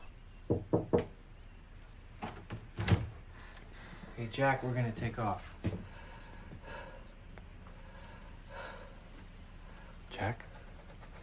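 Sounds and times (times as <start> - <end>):
knocking on a den door in a house: 0.5 - 1.2
speech: 4.2 - 5.9.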